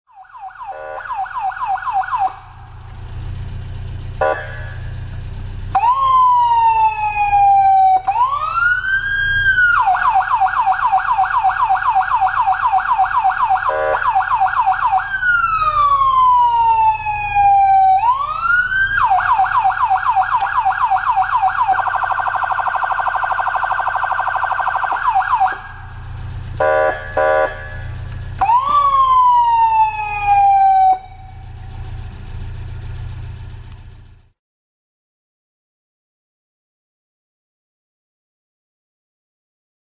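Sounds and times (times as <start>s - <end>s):
Federal Signal MS4000 mini siren: 0.1s - 2.8s, 4.2s - 5.0s, 5.7s - 32.0s.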